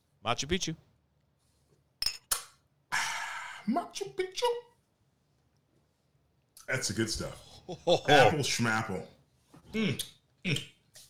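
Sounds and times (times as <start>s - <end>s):
speech: 0.2s - 0.9s, 3.7s - 4.7s, 6.7s - 9.1s, 9.7s - 10.7s
shot glasses of peach liquor clinking in a toast: 2.0s - 2.3s.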